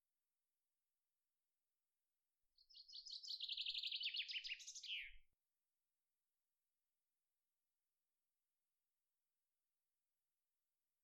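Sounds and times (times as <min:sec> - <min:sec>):
common chaffinch Fringilla coelebs song of trilled phrases: 0:02.6 - 0:05.3.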